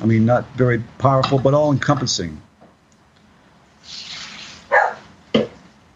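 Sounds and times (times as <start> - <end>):
speech: 0.0 - 2.5
soft rushing hiss: 0.0 - 5.9
dog barking: 4.7 - 5.1.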